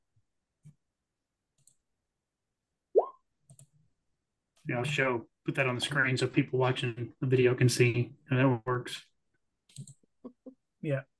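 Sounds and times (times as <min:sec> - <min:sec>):
quiet computer mouse clicks: 0:01.6 - 0:01.8, 0:03.5 - 0:03.8, 0:09.7 - 0:10.1
speech: 0:04.7 - 0:09.1, 0:09.8 - 0:10.0, 0:10.8 - 0:11.1.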